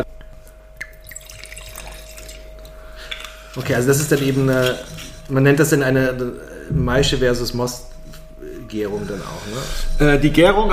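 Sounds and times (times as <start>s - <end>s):
faint constant electrical hum: 0.0s - 10.7s
wine pouring into a glass: 0.8s - 5.1s
speech: 3.6s - 7.9s, 8.7s - 10.7s.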